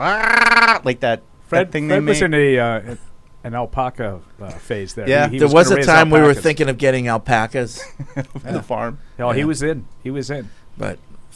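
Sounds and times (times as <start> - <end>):
person imitating a sheep bleating: 0.0 - 0.9
speech: 0.0 - 11.1.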